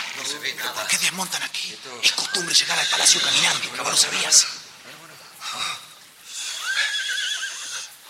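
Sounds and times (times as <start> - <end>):
hissy breathy background: 0.0 - 8.0
speech: 0.3 - 4.6
horse neighing: 2.0 - 8.0.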